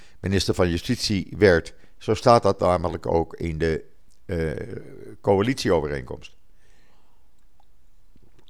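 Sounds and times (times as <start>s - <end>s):
speech: 0.2s - 6.4s
person sipping water: 6.6s - 8.4s
faint mouth and swallowing clicks: 7.3s - 8.4s.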